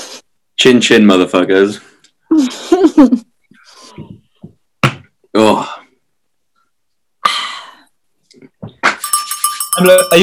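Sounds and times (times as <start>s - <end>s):
speech: 0.6s - 3.3s, 9.8s - 10.2s
bell struck sharply and ringing: 9.0s - 10.2s.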